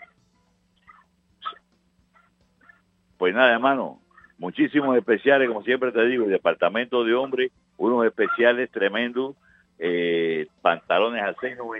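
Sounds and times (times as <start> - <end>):
steady low electrical hum: 0.0 - 11.7
small female dog yipping in an office: 0.8 - 2.8
speech: 3.2 - 11.7.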